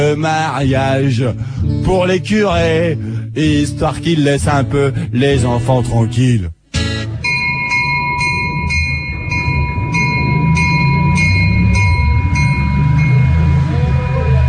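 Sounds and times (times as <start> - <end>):
speech: 0.1 - 6.6
steady high tone: 7.0 - 14.4
quick evenly spaced bright bell dings: 7.2 - 14.4
train pulling out of station, low rail rumble: 7.6 - 14.4.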